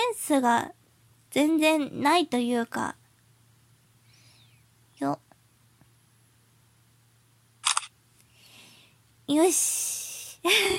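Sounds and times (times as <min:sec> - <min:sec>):
speech: 0:00.3 - 0:03.0, 0:05.0 - 0:05.2, 0:09.3 - 0:10.7
single-lens reflex camera shutter firing to take a photo: 0:07.6 - 0:08.0.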